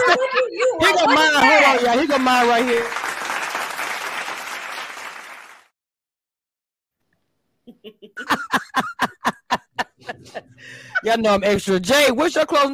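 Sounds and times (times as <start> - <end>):
laughter: 0.0 - 2.8, 7.7 - 11.2
speech: 1.0 - 3.0, 10.4 - 12.7
burst of dense clapping: 1.7 - 5.7.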